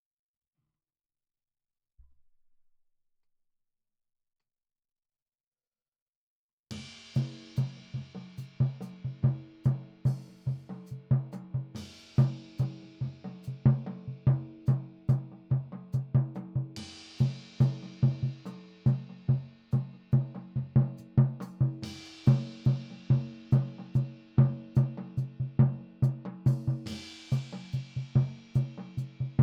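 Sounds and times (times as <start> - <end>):
floor tom drum: 6.8 - 29.4.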